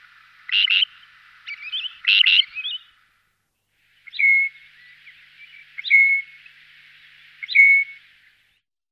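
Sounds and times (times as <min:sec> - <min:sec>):
great grey shrike harsh buzzy calls: 0:00.0 - 0:03.2, 0:03.8 - 0:08.6.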